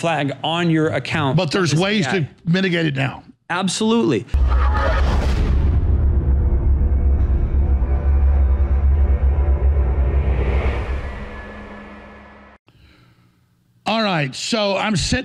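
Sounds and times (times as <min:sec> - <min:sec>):
speech: 0:00.0 - 0:05.0, 0:14.2 - 0:15.2
heavy sonic boom with deep rumble and sharp crack: 0:04.4 - 0:12.6.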